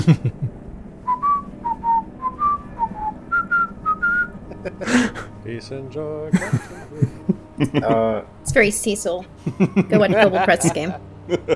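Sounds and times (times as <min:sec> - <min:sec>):
speech: 0:00.0 - 0:00.4, 0:04.7 - 0:11.5
laughter: 0:00.0 - 0:00.5, 0:04.4 - 0:05.3, 0:06.3 - 0:08.2, 0:09.4 - 0:11.5
person whistling a tune: 0:01.1 - 0:04.3.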